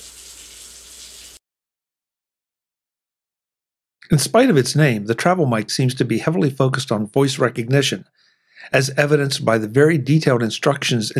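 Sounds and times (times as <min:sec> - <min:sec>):
water running from a tap recorded with a MacBook Pro internal microphone: 0:00.0 - 0:01.4
speech: 0:04.1 - 0:11.1.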